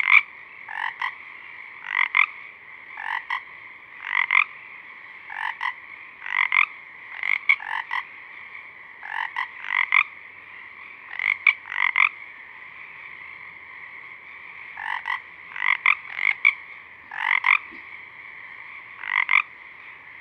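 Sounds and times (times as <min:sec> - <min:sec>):
Pacific chorus frogs Pseudacris regilla croaking at dusk: 0:00.0 - 0:20.2.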